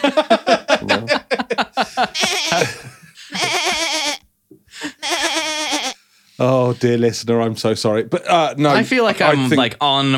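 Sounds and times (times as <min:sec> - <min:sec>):
laughter: 0:00.0 - 0:03.9
goat bleating: 0:02.1 - 0:04.3, 0:04.9 - 0:06.0
speech: 0:06.8 - 0:10.1.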